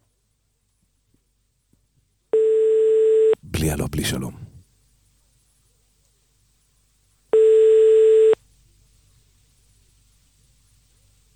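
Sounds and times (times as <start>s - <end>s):
telephone line tone: 2.4s - 3.4s, 7.4s - 8.4s
speech: 3.6s - 4.5s.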